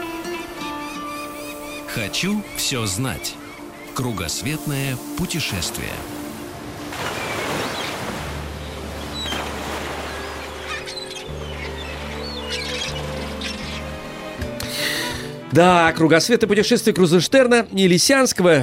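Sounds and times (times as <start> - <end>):
sharp bird squawks: 0.0 - 4.3, 8.7 - 15.1
ocean waves washing and rolling: 0.0 - 16.0
speech: 2.0 - 3.4, 4.0 - 6.2, 15.5 - 18.6.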